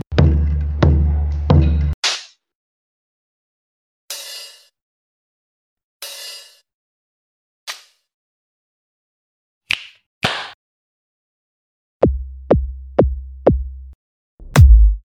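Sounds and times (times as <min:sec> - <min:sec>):
bass drum kit: 0:00.1 - 0:01.9, 0:12.0 - 0:15.1.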